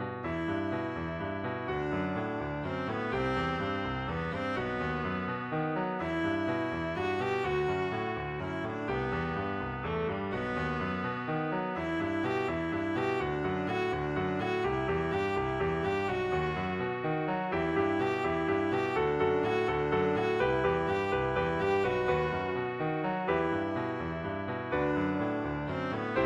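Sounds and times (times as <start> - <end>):
Spanish violin: 0.2 - 26.2.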